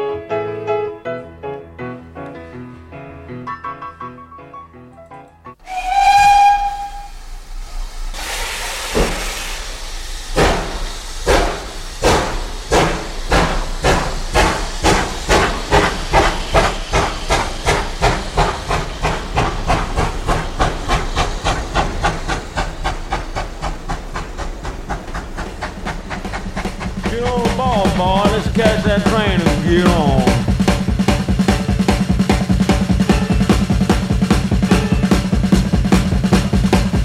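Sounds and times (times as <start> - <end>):
steam train whistle at departure: 5.6 - 17.8, 27.0 - 35.6
hissing steam of a departing steam train: 5.6 - 37.0.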